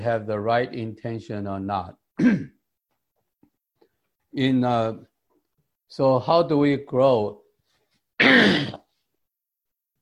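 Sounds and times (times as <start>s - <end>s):
speech: 0.0s - 2.6s, 4.4s - 5.1s, 5.9s - 7.4s, 8.2s - 8.8s
person clearing their throat: 2.2s - 2.6s, 8.2s - 8.9s.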